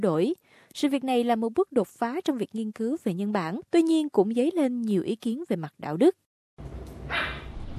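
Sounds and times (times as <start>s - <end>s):
speech: 0.0s - 7.3s
two beagles barking and yipping while playing: 7.1s - 7.6s.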